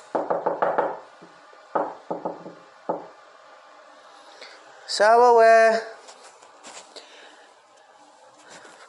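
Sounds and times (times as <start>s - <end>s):
boy knocking on a wooden door: 0.1s - 1.0s, 1.7s - 3.2s
speech: 5.0s - 5.9s.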